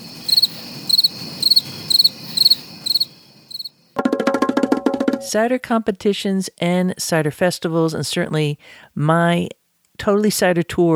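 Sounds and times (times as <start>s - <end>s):
crickets chirping: 0.0s - 4.0s
speech: 5.3s - 10.9s.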